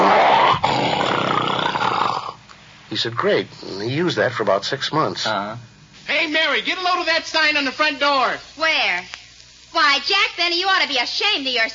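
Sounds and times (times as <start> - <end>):
human voice imitating a bear's growl: 0.0 - 2.4
speech: 2.9 - 11.7.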